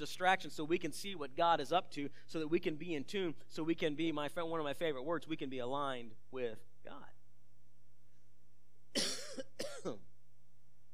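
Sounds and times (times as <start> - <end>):
speech: 0.0 - 7.2, 9.0 - 10.1
harsh coughs: 9.0 - 10.0.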